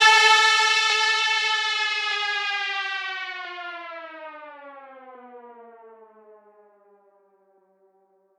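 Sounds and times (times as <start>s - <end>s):
cheap siren sound effect: 0.0s - 7.6s.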